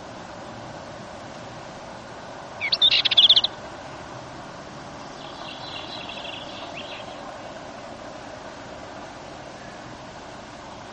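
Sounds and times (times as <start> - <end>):
Dartford warbler giving a scratchy high-pitched warble: 2.5 - 3.8, 5.0 - 8.4.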